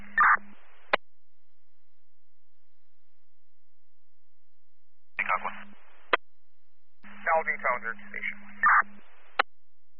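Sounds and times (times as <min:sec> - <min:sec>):
radio static hiss: 0:00.0 - 0:01.0, 0:05.2 - 0:06.2, 0:07.0 - 0:09.5
speech: 0:07.4 - 0:08.7.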